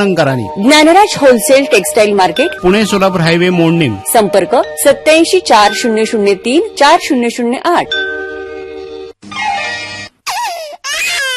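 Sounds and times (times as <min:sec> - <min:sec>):
speech: 0:00.0 - 0:08.2
sick baby crying: 0:09.2 - 0:11.3.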